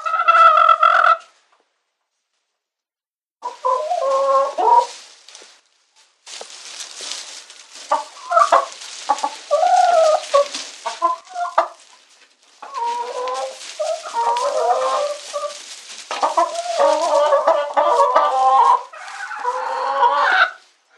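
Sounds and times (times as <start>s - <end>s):
domestic chicken squawking and clucking: 0.0s - 1.3s, 3.4s - 5.1s, 6.6s - 20.7s.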